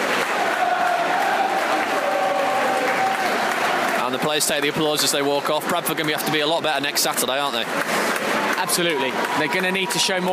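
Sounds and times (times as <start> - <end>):
football fans chanting behind the goal at a match: 0.0 - 2.8
speech: 4.1 - 10.3.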